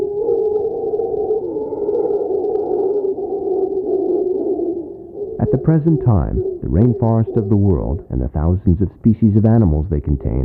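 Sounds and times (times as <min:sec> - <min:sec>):
mantled howler monkey roaring in a deep droning call: 0:00.2 - 0:08.4
speech: 0:05.6 - 0:10.4.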